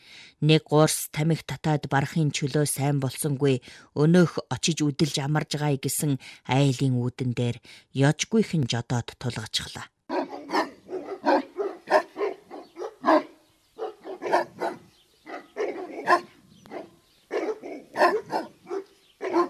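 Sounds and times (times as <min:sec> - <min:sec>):
speech: 0:00.4 - 0:10.0
watchdog barking loudly: 0:10.1 - 0:19.4.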